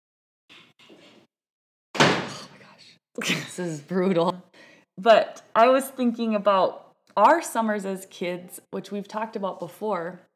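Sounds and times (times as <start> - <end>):
door slamming shut: 2.0 - 2.5
speech: 3.2 - 10.3.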